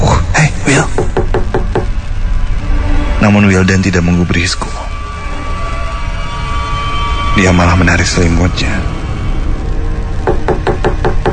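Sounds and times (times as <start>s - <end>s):
low rumble: 0.0s - 11.3s
sharp knocks on a bedroom door: 1.0s - 1.9s, 10.2s - 11.3s
speech: 3.3s - 5.0s, 7.4s - 9.0s.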